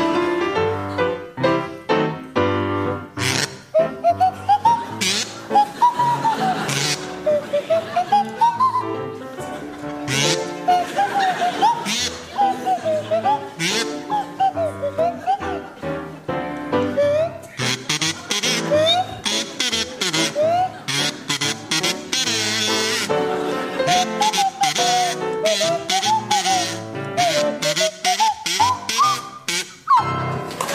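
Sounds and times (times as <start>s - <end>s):
steady rhythmic musical backing: 0.0s - 30.6s
buzzing kazoo playing a tune: 3.2s - 8.7s, 10.1s - 15.2s, 17.0s - 23.1s, 23.8s - 30.0s
sliding swanee whistle playing a tune: 3.3s - 9.0s, 10.1s - 15.6s, 16.9s - 23.1s, 23.8s - 30.2s
audience laughter: 3.8s - 16.3s, 17.5s - 21.7s, 23.1s - 25.2s.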